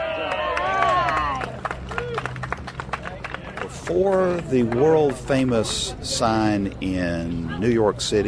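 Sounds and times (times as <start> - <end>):
scattered clapping: 0.0 - 6.2
murmur of voices: 0.0 - 8.2
small crowd chattering and cheering at a sign restoration celebration in Hinton: 0.0 - 8.2
speech: 3.9 - 8.2.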